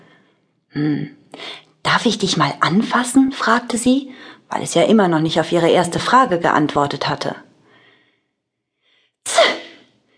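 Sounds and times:
speech: 0:00.7 - 0:07.4
sneeze: 0:09.3 - 0:09.9.

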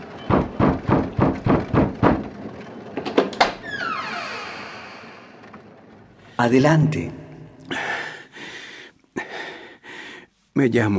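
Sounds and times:
church door creaking open: 0:00.0 - 0:07.0
knocking on a church door: 0:00.3 - 0:02.4
speech: 0:06.4 - 0:07.2, 0:10.6 - 0:10.9.

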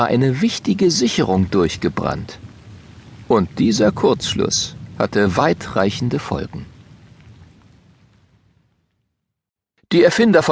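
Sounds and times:
speech: 0:00.0 - 0:02.4, 0:03.3 - 0:06.7, 0:09.9 - 0:10.5
deep rolling thunder rumble: 0:00.0 - 0:09.1
steady rain in a thunderstorm: 0:00.0 - 0:09.2, 0:10.0 - 0:10.5.

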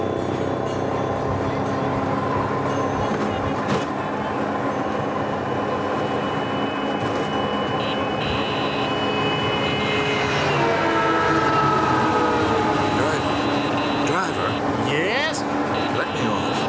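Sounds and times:
constant loud wash of road noise: 0:00.0 - 0:16.6
three-wheeled scooter taxi engine buzzing: 0:00.0 - 0:16.6
horn-like tones from surrounding vehicles: 0:06.2 - 0:14.8, 0:15.7 - 0:16.6.

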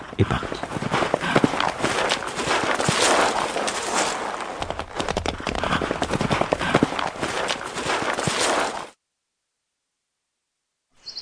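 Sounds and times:
speech: 0:00.2 - 0:00.7
horse hooves clip-clopping pulling a horse-drawn carriage: 0:00.3 - 0:08.9.

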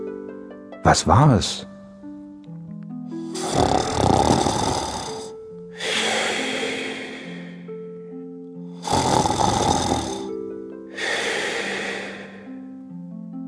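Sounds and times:
speech: 0:00.8 - 0:01.7
loud rasping snoring: 0:03.2 - 0:07.7, 0:08.7 - 0:10.4, 0:11.0 - 0:12.6.

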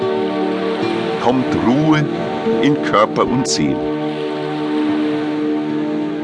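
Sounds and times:
sea surf washing on shore: 0:00.0 - 0:06.2
speech: 0:01.2 - 0:04.2.

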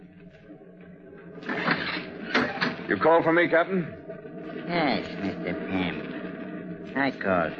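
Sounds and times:
ship captain's cabin door swinging open with a scraping mechanical rasp: 0:01.4 - 0:02.8
speech: 0:02.9 - 0:04.0, 0:04.7 - 0:06.1, 0:06.9 - 0:07.5.

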